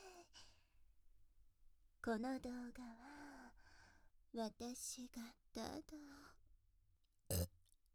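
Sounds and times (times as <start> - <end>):
speech: 2.0 - 3.1, 4.3 - 6.4
burps: 7.3 - 7.5.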